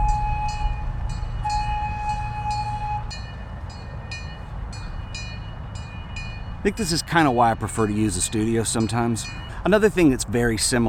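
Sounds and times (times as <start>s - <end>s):
steady horn-like tone: 0.0s - 3.2s
train rumbling past a park: 0.0s - 10.0s
speech: 6.6s - 10.8s.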